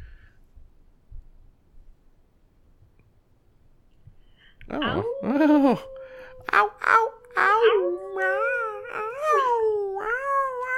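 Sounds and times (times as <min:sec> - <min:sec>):
speech: 0:04.7 - 0:05.9
person imitating a wolf howl: 0:04.7 - 0:10.7.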